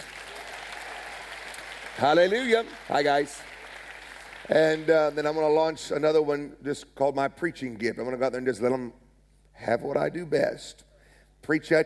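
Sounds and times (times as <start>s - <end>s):
audience clapping: 0.0s - 5.8s
speech: 2.0s - 3.5s, 4.5s - 9.0s, 9.6s - 11.8s.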